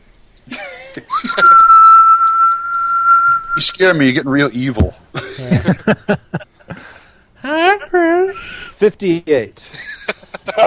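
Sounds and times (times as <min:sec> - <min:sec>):
speech: 0:00.5 - 0:01.8, 0:03.6 - 0:06.5, 0:08.8 - 0:09.8
laughter: 0:00.5 - 0:02.0, 0:05.2 - 0:07.0, 0:09.6 - 0:10.6
person whistling a long piercing note: 0:01.2 - 0:03.8.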